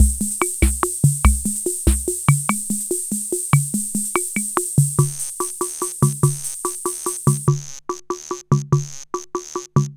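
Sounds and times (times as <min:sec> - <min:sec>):
rock and cha rhythm in 6 8 time: 0:00.0 - 0:07.5.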